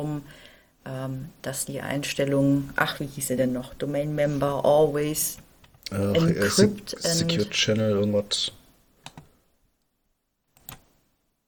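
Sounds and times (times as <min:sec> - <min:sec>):
speech: 0:00.0 - 0:08.6
computer keyboard and mouse clicks: 0:09.0 - 0:09.3, 0:10.5 - 0:11.0.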